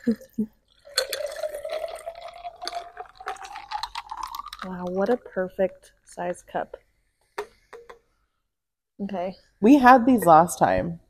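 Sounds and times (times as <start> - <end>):
speech: 0.0 - 0.6, 4.6 - 6.8, 9.0 - 11.0
spilled alcoholic drink splashing and dripping: 0.6 - 6.2.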